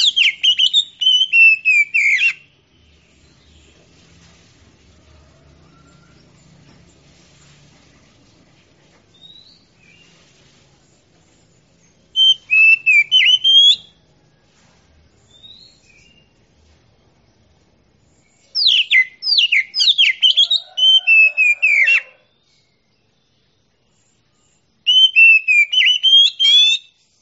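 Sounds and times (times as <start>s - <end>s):
Oriental magpie-robin singing: 0.0s - 2.5s, 12.1s - 13.9s, 18.2s - 22.1s, 24.9s - 27.0s.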